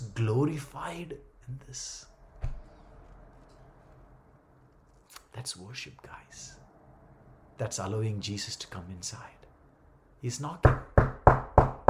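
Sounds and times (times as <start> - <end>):
speech: 0.2 - 2.1, 5.4 - 6.6, 7.6 - 9.4, 10.2 - 11.1
firm knocks on a door: 10.6 - 11.8.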